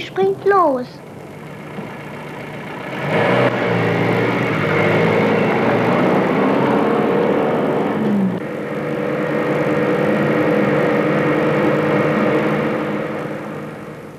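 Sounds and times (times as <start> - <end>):
speech: 0.0 - 1.1
truck engine running with low rumbling drone while driving: 0.0 - 14.1.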